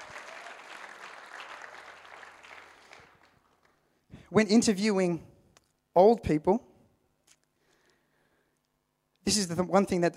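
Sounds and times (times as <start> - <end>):
audience applause: 0.0 - 3.8
speech: 4.3 - 5.3, 6.0 - 6.7, 9.3 - 10.1.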